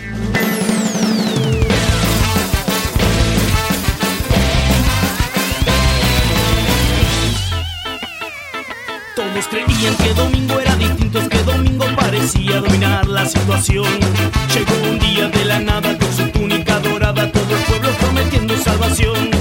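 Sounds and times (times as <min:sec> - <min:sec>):
rock song intro played by full band: 0:00.0 - 0:19.3
wavering high tone: 0:00.2 - 0:02.2, 0:05.0 - 0:09.8
sliding, sweeping synth tones: 0:00.3 - 0:10.2
speech: 0:12.3 - 0:17.7.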